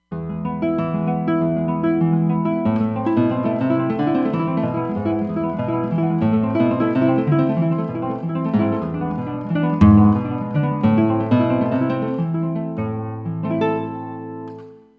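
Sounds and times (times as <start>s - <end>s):
El Toro guitar on Roland Fantom XR synthesizer: 0.2s - 14.5s.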